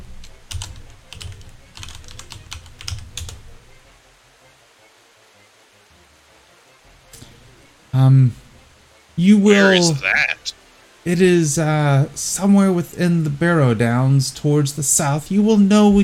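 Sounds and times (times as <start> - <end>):
computer keyboard typing a chat message: 0.5 - 3.4
speech: 8.0 - 8.4, 9.2 - 10.1, 11.0 - 16.0.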